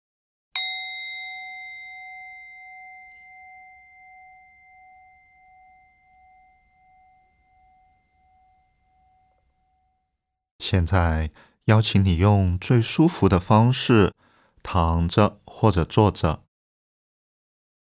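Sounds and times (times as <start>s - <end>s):
meditation bell struck and ringing: 0.6s - 10.2s
speech: 10.6s - 16.4s.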